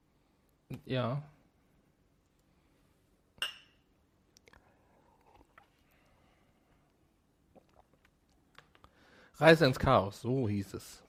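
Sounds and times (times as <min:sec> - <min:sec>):
speech: 0:00.7 - 0:01.4, 0:09.4 - 0:11.0
drinking glasses clinking in a toast: 0:03.4 - 0:03.8.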